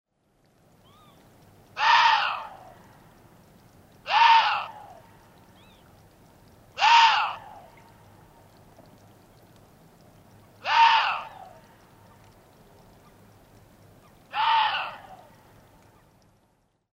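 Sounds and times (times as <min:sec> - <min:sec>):
Chinese water deer calling: 0:01.8 - 0:02.7, 0:04.1 - 0:05.0, 0:06.8 - 0:07.8, 0:10.6 - 0:11.6, 0:14.2 - 0:15.4.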